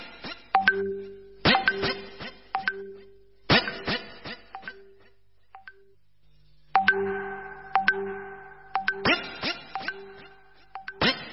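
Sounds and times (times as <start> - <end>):
phone message notification chime: 0.6 - 2.9, 6.8 - 11.1.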